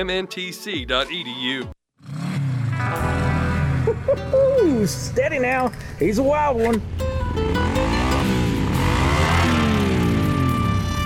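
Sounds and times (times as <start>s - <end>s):
speech: 0.0s - 2.2s, 4.0s - 8.0s
motorcycle engine revving: 1.9s - 4.0s, 7.4s - 11.0s.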